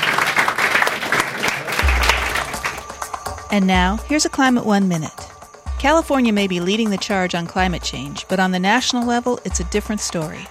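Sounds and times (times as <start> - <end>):
audience applauding after a lightning round: 0.0 - 3.5
speech: 3.5 - 5.2, 5.8 - 10.4.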